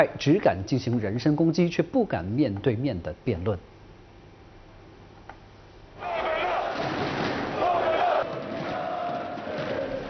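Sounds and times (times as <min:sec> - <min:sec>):
speech: 0:00.0 - 0:03.7
large crowd of rally supporters cheering and roaring in a big indoor space: 0:06.0 - 0:10.0.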